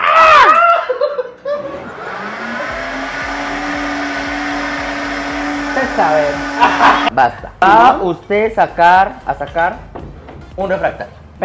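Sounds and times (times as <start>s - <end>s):
laughter: 0.6s - 2.2s, 6.5s - 7.1s
kitchen blender whirring: 1.6s - 7.1s
speech: 6.0s - 9.9s, 10.6s - 11.4s.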